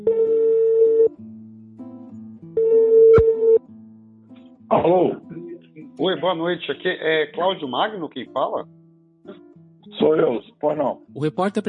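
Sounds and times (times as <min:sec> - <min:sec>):
telephone ringback tone: 0:00.1 - 0:01.1, 0:02.6 - 0:03.6
speech: 0:04.7 - 0:05.3, 0:06.0 - 0:08.8, 0:10.0 - 0:11.6.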